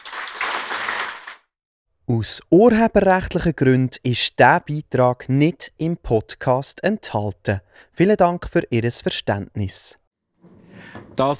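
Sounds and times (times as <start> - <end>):
audience applause: 0.0 - 1.5
speech: 2.1 - 10.0, 10.8 - 11.3.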